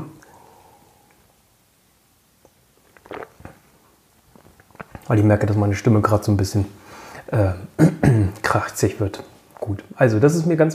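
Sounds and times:
lip sounds: 2.4s - 5.1s
person swallowing water from a glass: 2.8s - 5.1s
speech: 5.1s - 10.7s.

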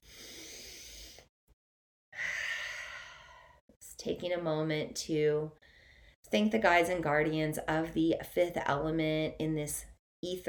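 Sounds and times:
deep breath before a closing prayer: 0.0s - 1.3s, 2.2s - 3.6s, 5.6s - 6.2s
speech: 4.0s - 5.6s, 6.3s - 10.4s.

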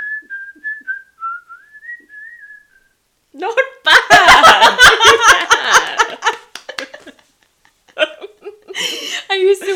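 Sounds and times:
person whistling a short wavering melody: 0.0s - 3.0s
laughter: 3.9s - 7.3s.

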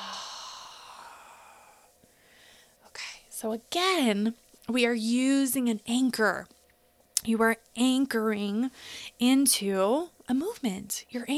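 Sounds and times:
long breathy exhale during a guided breathing meditation: 0.0s - 2.8s
speech: 3.4s - 6.6s, 7.2s - 11.3s.

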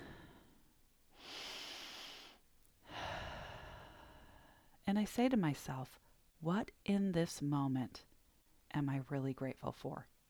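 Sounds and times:
person taking a deep breath: 0.0s - 0.6s, 1.2s - 4.8s
speech: 4.9s - 8.1s, 8.7s - 10.1s.

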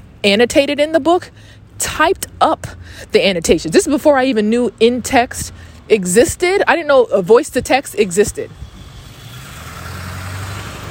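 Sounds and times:
speech: 0.2s - 8.6s
car passing by outside with engine rumbling and road noise: 8.5s - 10.9s.

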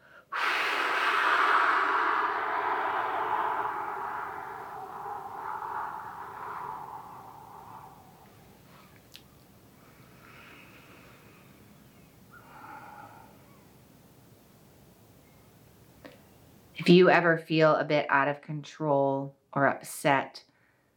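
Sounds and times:
deep breath in and blowing out: 0.0s - 9.0s, 12.4s - 13.5s
speech: 16.8s - 20.5s.

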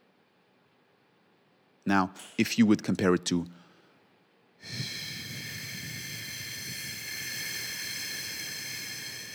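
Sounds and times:
speech: 1.8s - 3.6s, 4.6s - 5.0s
person's long steady exhale: 4.6s - 9.3s.

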